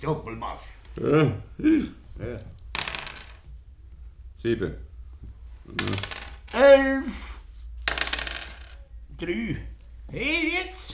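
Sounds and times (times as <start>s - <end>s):
speech: 0.0s - 2.6s, 4.4s - 4.9s, 5.7s - 7.3s, 9.2s - 10.9s
dice clattering across a hard tabletop: 2.6s - 3.6s, 5.7s - 6.7s, 7.7s - 8.9s.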